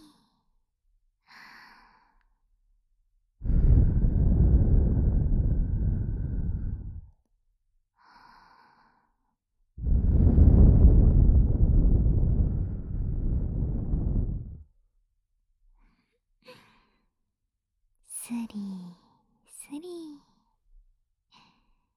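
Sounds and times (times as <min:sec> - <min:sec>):
breath blown onto the microphone: 0:03.4 - 0:07.1, 0:09.8 - 0:14.6.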